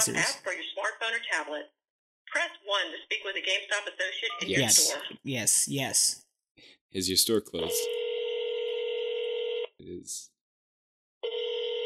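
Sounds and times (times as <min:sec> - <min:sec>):
speech: 0:00.0 - 0:08.0, 0:09.8 - 0:10.3
electronic telephone ringback tone through a phone line: 0:07.6 - 0:09.7, 0:11.2 - 0:11.8.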